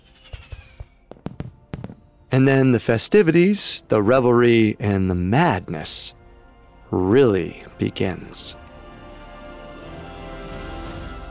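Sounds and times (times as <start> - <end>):
faint whistling tone: 0.0 - 1.1
fireworks exploding: 0.0 - 2.3
speech: 2.3 - 6.2, 6.9 - 8.6.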